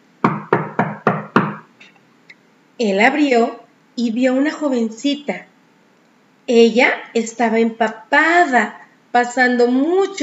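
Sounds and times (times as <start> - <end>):
firm knocks on a wooden door: 0.2 - 1.6
speech: 2.8 - 5.5, 6.5 - 10.2.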